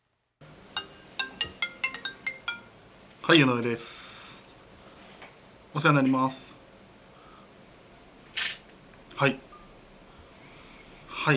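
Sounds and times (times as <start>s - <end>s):
faint room noise: 0.0s - 11.3s
office telephone ringing with an electronic warble: 0.8s - 2.7s
speech: 3.3s - 4.1s, 5.8s - 6.6s, 9.2s - 9.5s.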